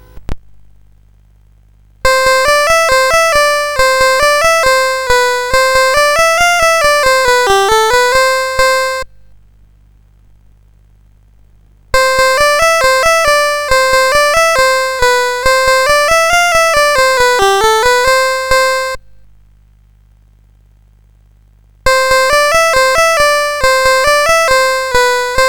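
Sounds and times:
CSG8580 synthesizer chip tune: 0:02.1 - 0:09.1, 0:12.0 - 0:19.0, 0:21.9 - 0:25.4.

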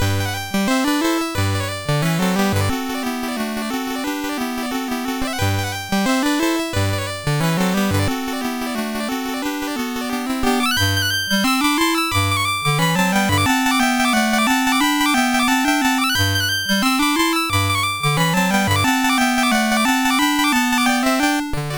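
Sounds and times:
chiptune music on a MOS6581R3 SID chip: 0:00.2 - 0:21.7.

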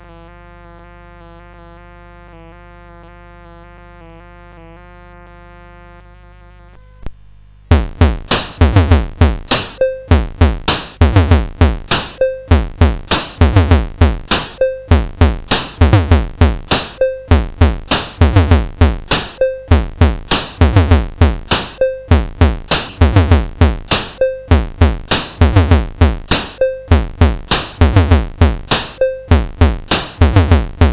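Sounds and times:
drums: 0:07.1 - 0:30.9.

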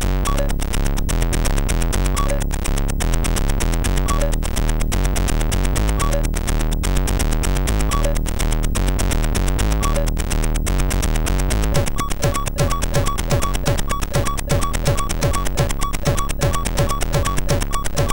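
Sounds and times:
beat on a MOS 6581 sound chip: 0:00.2 - 0:06.8, 0:07.4 - 0:18.1.

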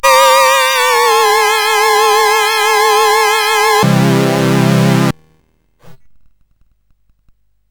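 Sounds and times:
MOS 8580 SID chip game music: 0:00.0 - 0:05.2.

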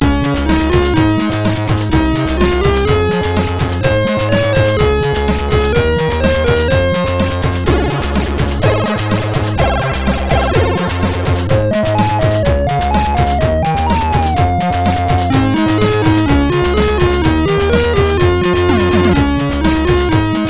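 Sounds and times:
chiptune music on a SID MOS6581R4 sound chip: 0:00.0 - 0:20.4.

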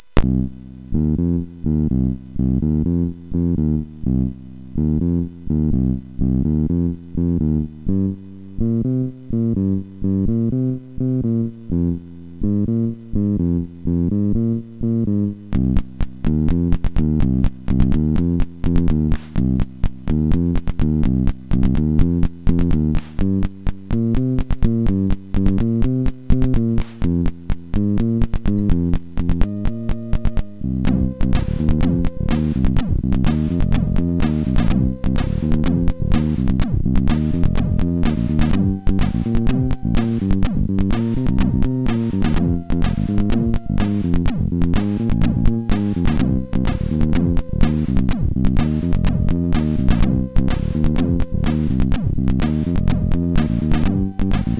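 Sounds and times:
MOS6581R4 blues bassline: 0:00.0 - 0:54.5.

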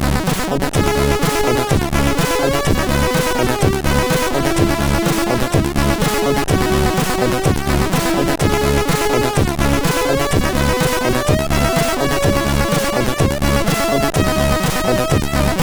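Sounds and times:
game muzak on SID CSG8580R5 chip: 0:00.2 - 0:15.6.

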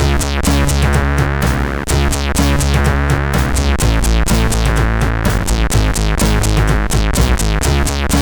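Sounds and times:
synthesized bass from a CSG8580 SID sound chip: 0:00.0 - 0:08.2.

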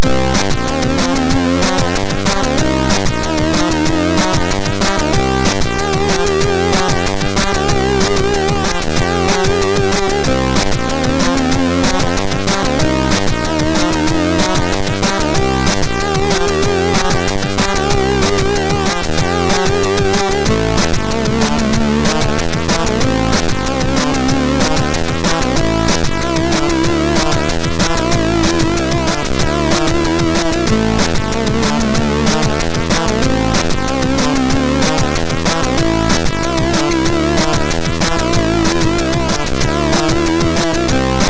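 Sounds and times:
music from MOS6581R2 chip: 0:00.0 - 0:41.2.

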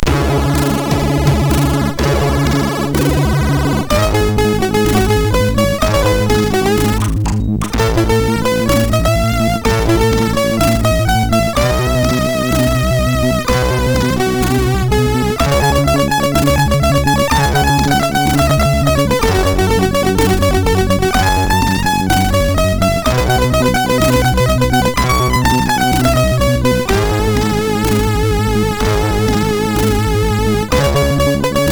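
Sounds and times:
chiptune loader music on MOS6581R4 SID chip: 0:00.0 - 0:31.6.

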